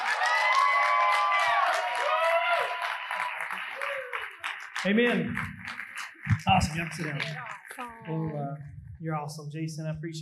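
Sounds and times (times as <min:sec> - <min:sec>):
large crowd applauding and cheering with whoops and shouts: 0:00.0 - 0:08.1
speech: 0:04.8 - 0:05.6, 0:06.4 - 0:10.2.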